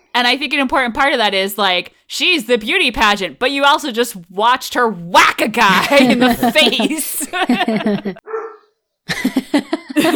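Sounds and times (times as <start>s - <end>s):
speech: 0.2s - 8.3s, 9.2s - 10.1s
laughter: 5.6s - 8.2s, 9.1s - 10.1s
dogs barking: 8.2s - 8.7s.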